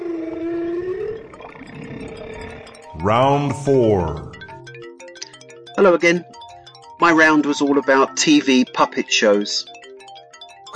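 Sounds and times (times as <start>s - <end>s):
humpback whale song: 0.0s - 4.6s
speech: 3.0s - 4.3s, 5.8s - 6.4s, 7.0s - 9.8s.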